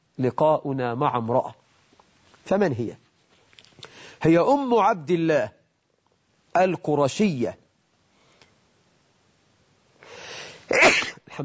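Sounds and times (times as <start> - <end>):
speech: 0.2 - 1.6, 2.5 - 3.0, 4.2 - 5.6, 6.6 - 7.6
person sneezing: 10.6 - 11.3.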